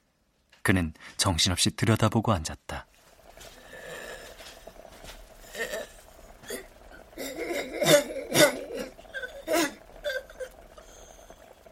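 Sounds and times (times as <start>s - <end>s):
speech: 0.7s - 2.9s
woman coughing fit as phlegm rises: 6.4s - 10.4s.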